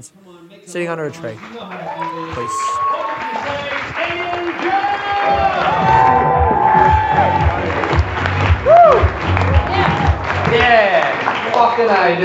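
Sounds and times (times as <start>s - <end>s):
speech: 0.0s - 8.0s, 10.5s - 12.2s
crowd applauding: 1.2s - 12.2s
crowd whoops and shouts: 1.9s - 3.7s, 4.6s - 7.7s, 8.6s - 9.1s.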